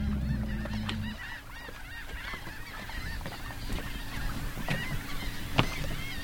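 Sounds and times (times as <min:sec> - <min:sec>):
low engine rumble: 0:00.0 - 0:01.2
shorebird colony calling at a rookery on Green Island in the Laguna Madre: 0:00.0 - 0:06.2.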